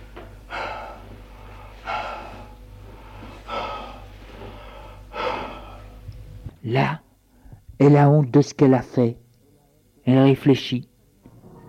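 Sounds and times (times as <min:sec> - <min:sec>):
woman breathing heavily sitting down in an armchair: 0:00.0 - 0:06.1
low steady hum: 0:00.0 - 0:11.6
speech: 0:06.7 - 0:07.0, 0:07.8 - 0:09.2, 0:10.1 - 0:10.9.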